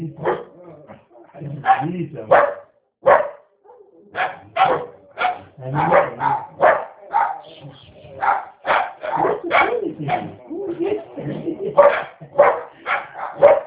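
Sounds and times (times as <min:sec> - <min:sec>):
dog barking: 0:00.2 - 0:00.6, 0:01.6 - 0:10.4, 0:11.6 - 0:13.6
speech: 0:01.6 - 0:02.6
laughter: 0:09.2 - 0:13.2.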